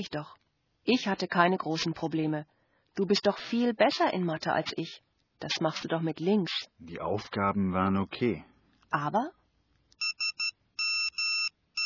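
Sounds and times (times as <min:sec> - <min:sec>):
speech: 0:00.0 - 0:09.4
text message alert beeps on a mobile phone: 0:10.0 - 0:11.8.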